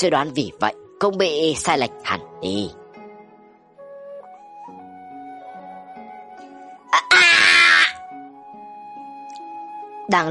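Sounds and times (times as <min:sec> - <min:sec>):
speech: 0:00.0 - 0:02.8, 0:10.1 - 0:10.3
agonized scream: 0:06.9 - 0:08.0.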